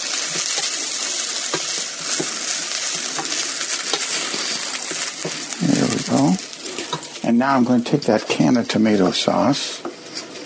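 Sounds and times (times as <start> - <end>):
stirring a cooking pot on the stove: 0.0 - 9.1
constant loud hiss: 0.0 - 10.4
speech: 7.3 - 9.8.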